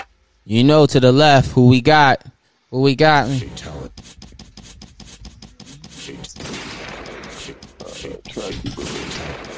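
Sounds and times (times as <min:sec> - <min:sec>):
speech: 0:00.5 - 0:04.0
gunshots in a rapid burst of sharp cracks: 0:06.3 - 0:09.5.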